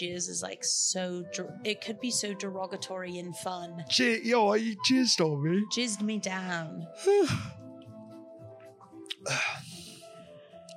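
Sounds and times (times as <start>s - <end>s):
speech: 0.0s - 7.6s, 9.2s - 9.5s
person yawning: 7.0s - 7.6s, 9.1s - 9.8s.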